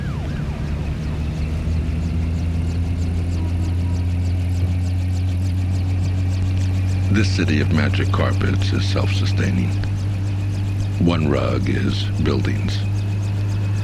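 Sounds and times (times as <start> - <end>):
car engine rumbling as a car drives down a road: 0.0 - 13.8
faint high chirping noise: 0.6 - 13.8
speech: 7.2 - 9.9, 11.0 - 12.9.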